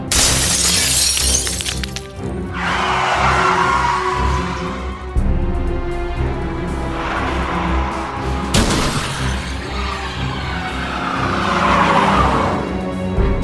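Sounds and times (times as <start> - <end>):
falling glass shards: 0.1 - 2.2
window glass shattering as a man is thrown through: 0.1 - 2.3
car tires screeching and skidding: 0.5 - 13.2
car engine roaring: 1.7 - 13.3.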